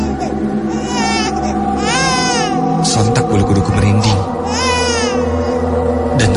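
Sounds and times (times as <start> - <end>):
infant crying in the corner of a lift: 0.0 - 2.8, 4.0 - 5.6
constant dense drone: 0.0 - 6.3.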